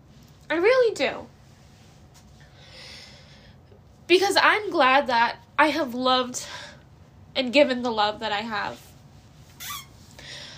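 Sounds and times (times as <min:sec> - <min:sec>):
speech: 0:00.5 - 0:01.3, 0:04.1 - 0:06.6, 0:07.4 - 0:08.9
chair squeaking: 0:09.6 - 0:10.0.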